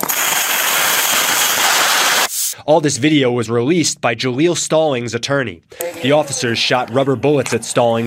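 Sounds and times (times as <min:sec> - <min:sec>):
air blasting out of a punctured car tire: 0:00.0 - 0:02.6
speech: 0:02.7 - 0:08.0.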